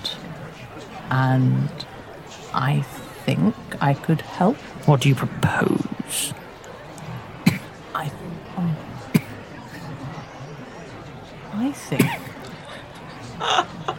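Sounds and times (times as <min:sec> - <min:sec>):
speech: 0:01.1 - 0:01.9, 0:02.6 - 0:06.4, 0:11.6 - 0:12.2
laughter: 0:09.0 - 0:10.4, 0:11.9 - 0:13.9
person coughing forcefully: 0:12.0 - 0:12.4.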